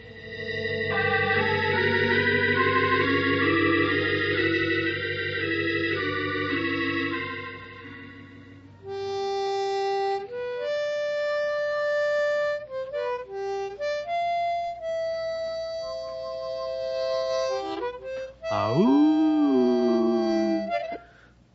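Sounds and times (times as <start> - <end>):
slow wavering harmonica melody: 0.0 - 21.3
person imitating a coyote howl: 18.5 - 20.8.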